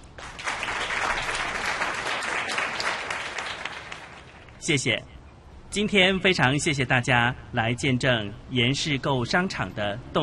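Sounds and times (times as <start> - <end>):
sizable crowd applauding: 0.0 - 4.6
speech: 4.7 - 5.2, 5.8 - 10.2.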